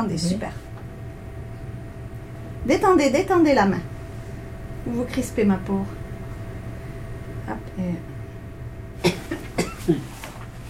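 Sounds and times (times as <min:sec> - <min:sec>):
speech: 0:00.0 - 0:00.7, 0:02.6 - 0:03.9, 0:04.8 - 0:06.0, 0:07.5 - 0:08.1, 0:09.9 - 0:10.1
quiet hum: 0:00.0 - 0:10.6
wet phlegmy coughs: 0:09.0 - 0:10.1.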